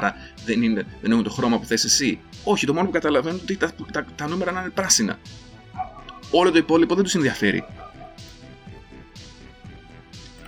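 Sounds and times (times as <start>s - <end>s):
speech: 0.0s - 5.5s, 6.3s - 7.8s
dog barking: 5.8s - 6.4s, 7.3s - 8.3s.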